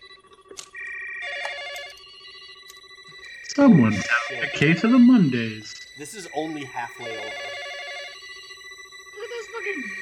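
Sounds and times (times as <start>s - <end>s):
office telephones ringing with overlapping electronic tones: 0.8s - 10.0s
speech: 3.6s - 7.6s.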